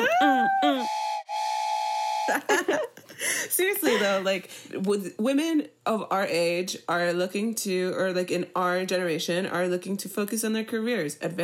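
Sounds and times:
steam train whistle: 0.7 - 2.4
speech: 2.3 - 11.4.

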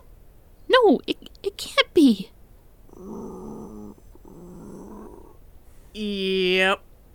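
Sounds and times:
speech: 0.8 - 2.3
wounded creature's labored rasping breathing after a sword stab: 2.9 - 6.0.

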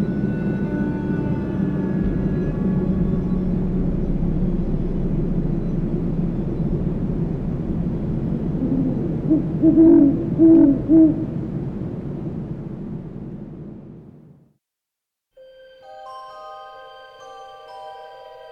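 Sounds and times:
steady rumbling background: 0.0 - 14.4
great horned owl hooting at dusk: 8.6 - 11.4.

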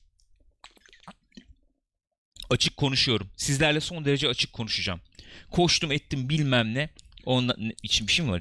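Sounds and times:
thirsty speaker sipping water with slurps and swallows: 0.1 - 1.7, 6.9 - 7.3
speech: 2.5 - 8.4.

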